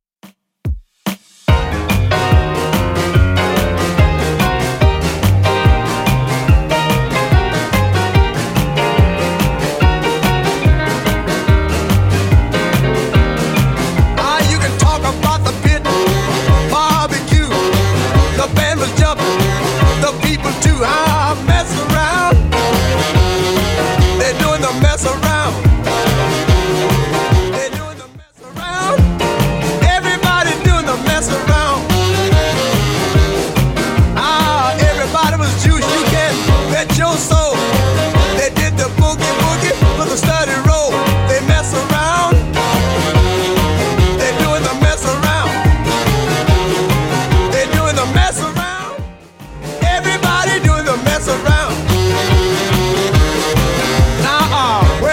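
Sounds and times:
1950s style drum beat: 0.2 - 55.1.

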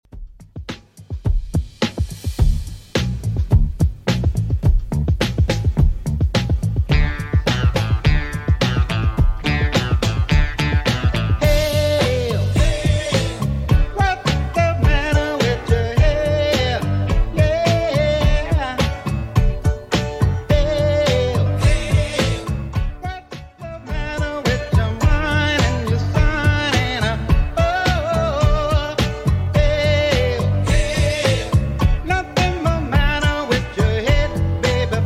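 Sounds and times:
seventies style music at 106 bpm: 0.0 - 35.0.

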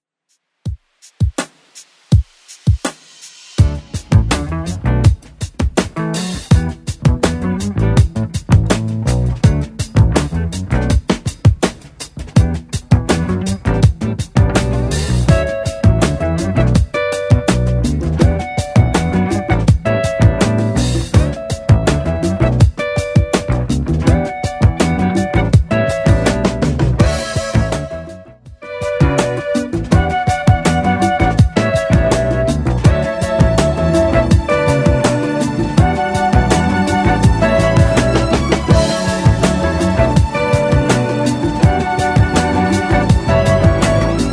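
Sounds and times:
drum machine beat: 0.6 - 44.3.

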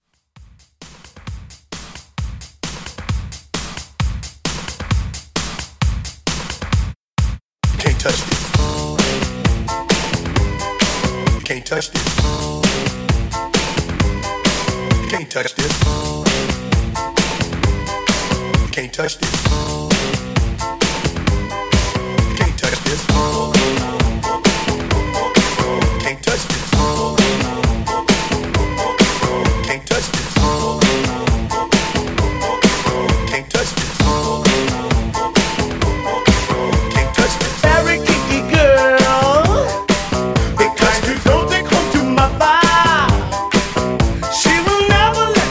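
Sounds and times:
80s funk drum beat: 0.4 - 45.4.

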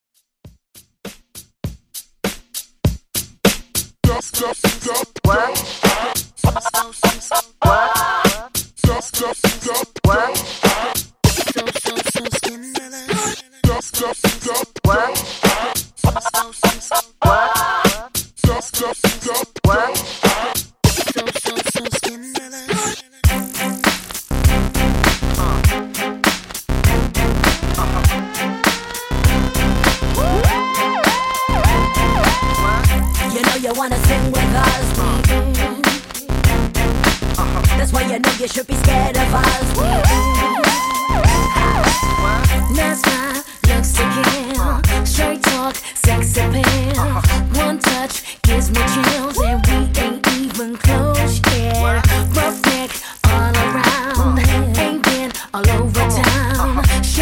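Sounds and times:
funk DJ scratch intro at 100 BPM: 4.1 - 12.5, 13.2 - 22.1, 22.7 - 57.2.

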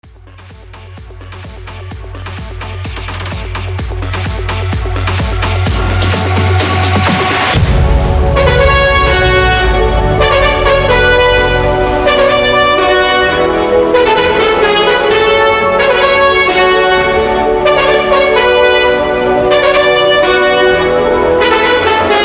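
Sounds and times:
epic synth banger at 128 BPM: 0.0 - 22.2.

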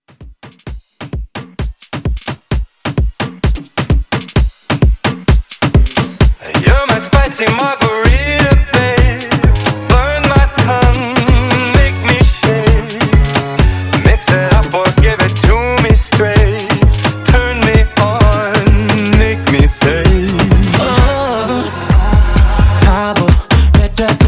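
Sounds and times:
Afrobeat drums: 0.0 - 24.2.

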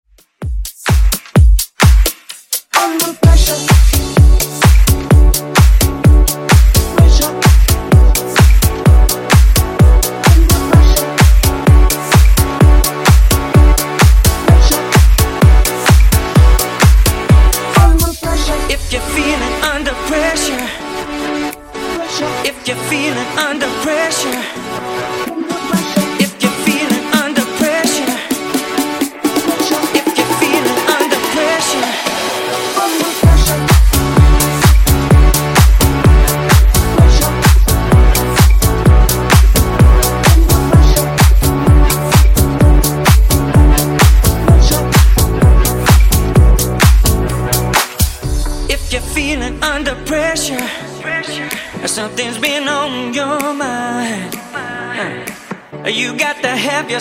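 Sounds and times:
funk bootleg at 128 bpm: 0.1 - 56.9.

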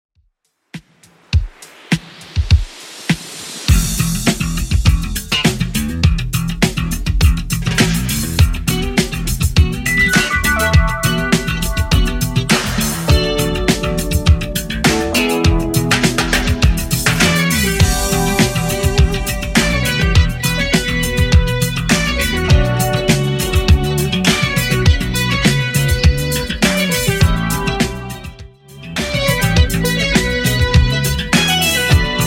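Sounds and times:
eighties style music beat at 102 bpm: 0.8 - 32.2.

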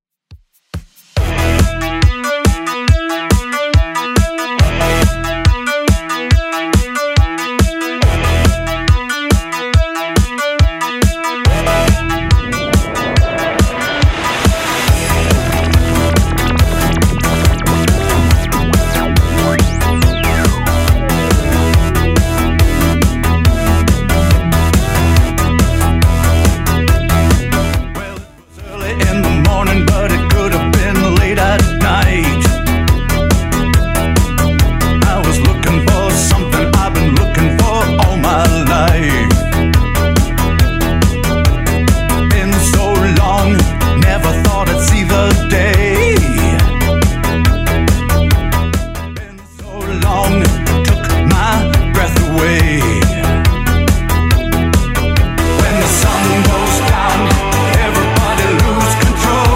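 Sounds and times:
140bpm hip hop beat: 0.3 - 59.5.

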